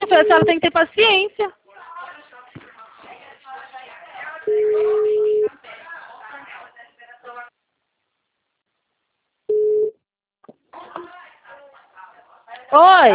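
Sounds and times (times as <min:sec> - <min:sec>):
phone-quality voices: 0:00.0 - 0:00.8
speech: 0:00.2 - 0:01.6, 0:04.5 - 0:05.2, 0:12.7 - 0:13.1
phone line beeps as a call drops: 0:04.5 - 0:05.5, 0:09.5 - 0:09.9.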